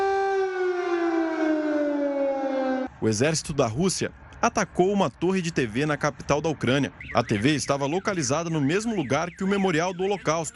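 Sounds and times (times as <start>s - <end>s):
air raid siren wailing across an open city space: 0.0s - 3.0s
speech: 3.0s - 10.5s.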